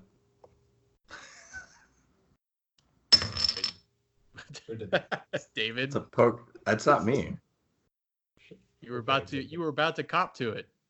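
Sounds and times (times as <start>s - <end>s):
coins dropping and clattering onto a hard surface: 3.1s - 3.8s
speech: 4.5s - 7.4s, 8.5s - 10.7s.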